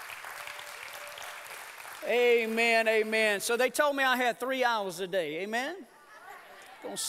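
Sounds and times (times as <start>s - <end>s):
crowd applauding: 0.0s - 3.6s
speech: 2.0s - 5.9s, 6.8s - 7.0s.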